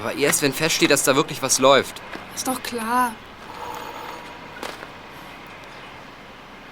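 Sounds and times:
speech: 0.0s - 3.3s
doorbell ringing: 3.5s - 4.8s.

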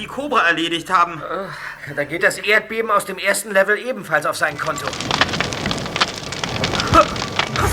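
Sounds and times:
speech: 0.0s - 5.6s
castle tower burning, crackling and hissing: 1.2s - 7.7s
sharp pops of burning castle tower: 4.5s - 7.7s.

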